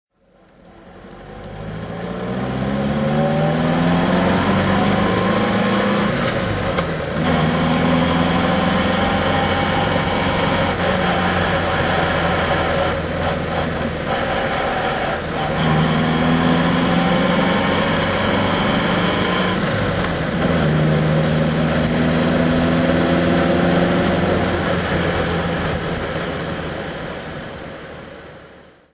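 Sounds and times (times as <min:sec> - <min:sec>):
MG TC car driving: 0:00.2 - 0:28.8.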